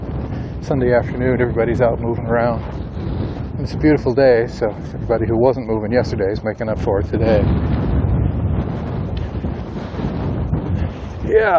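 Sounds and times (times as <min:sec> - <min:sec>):
light wind buffeting against the microphone outdoors on a sunny afternoon walk: 0:00.0 - 0:11.5
speech: 0:00.6 - 0:02.8, 0:03.6 - 0:07.6, 0:11.3 - 0:11.5.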